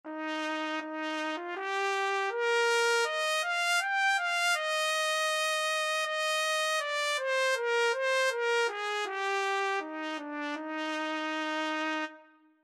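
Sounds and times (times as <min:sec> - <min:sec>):
trumpet playing arched intervals: 0:00.1 - 0:12.4.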